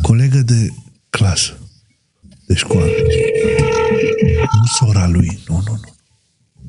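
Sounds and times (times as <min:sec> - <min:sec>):
speech: 0:00.1 - 0:01.6, 0:02.5 - 0:05.9
telephone ringing tone on a call placed to Italy: 0:02.7 - 0:04.8.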